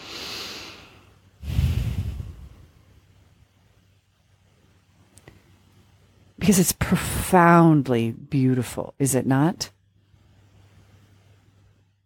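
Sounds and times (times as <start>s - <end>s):
deep breath taken during a calming guided relaxation: 0.0s - 2.8s
speech: 6.5s - 9.8s.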